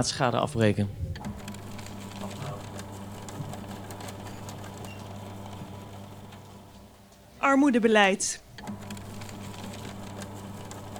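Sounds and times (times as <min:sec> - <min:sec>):
speech: 0:00.0 - 0:01.1, 0:07.5 - 0:08.8
paper shredder shredding paper: 0:01.2 - 0:06.9, 0:08.6 - 0:10.9.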